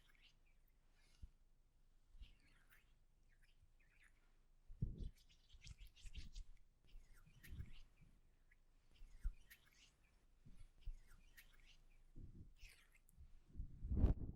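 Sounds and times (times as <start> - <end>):
soft hair brushing in a hair salon treatment: 0.0 - 1.3, 5.0 - 8.2, 8.8 - 14.2
quick bright strokes and rustles: 5.2 - 8.0, 9.0 - 13.1.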